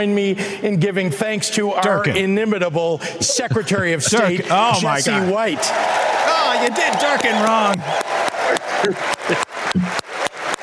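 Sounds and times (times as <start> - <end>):
speech: 0.0 - 8.1, 8.8 - 10.0
laughter: 3.2 - 5.7
hands clapping into a microphone: 6.2 - 10.6.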